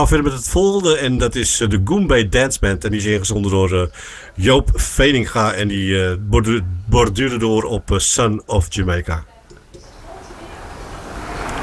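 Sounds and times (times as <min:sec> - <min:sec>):
speech: 0:00.0 - 0:09.3
surf of sea waves at the start of a song: 0:09.8 - 0:11.6.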